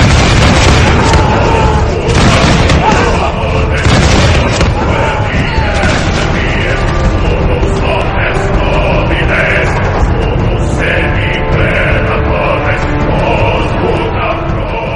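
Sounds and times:
arquebus gunfire volley in a battle: 0:00.0 - 0:07.2
loud dense continuous battle din: 0:00.0 - 0:14.9.

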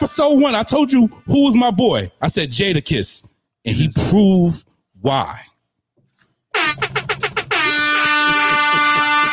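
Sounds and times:
speech: 0:00.0 - 0:05.5
air horn blasts: 0:07.5 - 0:09.3.

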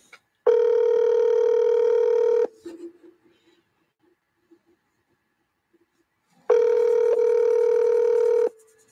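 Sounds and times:
telephone ringback tone heard from the caller's end: 0:00.5 - 0:02.5, 0:06.5 - 0:08.6.

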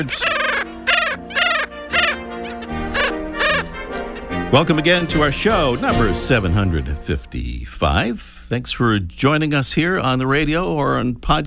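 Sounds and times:
speech: 0:00.0 - 0:00.4, 0:04.5 - 0:11.4
black skimmer calls: 0:00.0 - 0:04.8.

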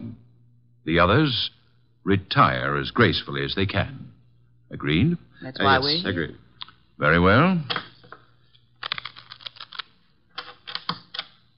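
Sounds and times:
speech: 0:00.8 - 0:04.1, 0:04.7 - 0:06.4, 0:07.0 - 0:07.8
playing cards shuffled for a hand of poker: 0:08.8 - 0:11.4.

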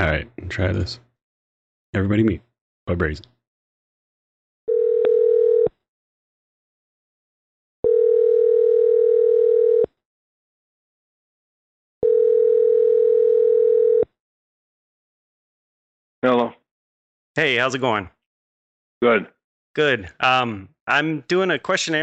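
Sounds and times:
speech: 0:00.0 - 0:01.0, 0:01.9 - 0:03.4, 0:17.4 - 0:18.2, 0:19.0 - 0:22.0
buzzing telephone ringback tone after a speed-dial call: 0:04.7 - 0:05.7, 0:07.8 - 0:09.9, 0:12.0 - 0:14.1.

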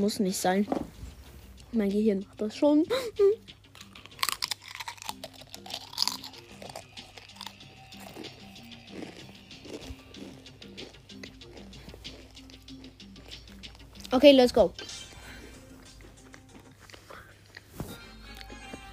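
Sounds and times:
speech: 0:00.0 - 0:01.0, 0:01.7 - 0:03.6, 0:14.2 - 0:14.9
potato chips being chewed: 0:03.6 - 0:14.2, 0:15.8 - 0:18.9.

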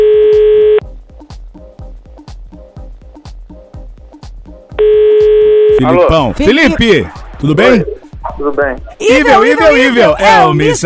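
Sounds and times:
telephone tone as a call is placed: 0:00.0 - 0:00.8, 0:04.8 - 0:05.8
speech: 0:05.8 - 0:10.8.

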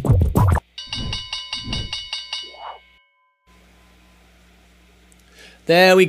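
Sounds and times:
stock market closing bell ringing: 0:00.8 - 0:03.6
speech: 0:05.7 - 0:06.0.

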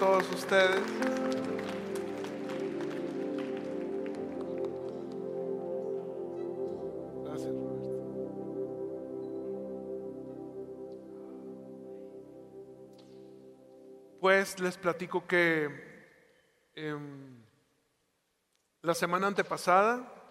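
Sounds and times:
speech: 0:00.0 - 0:01.6, 0:14.3 - 0:15.9, 0:16.8 - 0:17.4, 0:18.8 - 0:20.2
crowd applauding: 0:00.0 - 0:05.8
sustained keyboard or organ chords: 0:00.0 - 0:16.0.

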